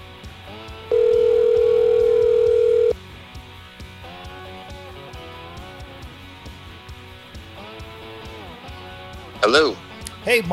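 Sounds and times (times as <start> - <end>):
faint music: 0.0 - 10.5
telephone ringback tone on an outgoing call: 0.9 - 3.0
speech: 10.3 - 10.5.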